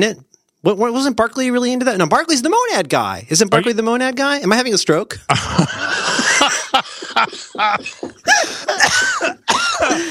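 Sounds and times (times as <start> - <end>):
speech: 0.0 - 5.9, 6.5 - 10.0
laughter: 5.3 - 10.0
person coughing: 7.8 - 10.0
person clearing throat: 8.7 - 10.0.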